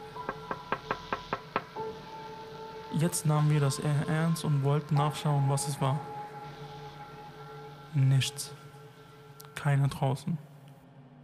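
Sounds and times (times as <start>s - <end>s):
knocking on a window: 0.2s - 1.8s
speech: 3.0s - 6.1s, 7.9s - 8.6s, 9.6s - 10.5s.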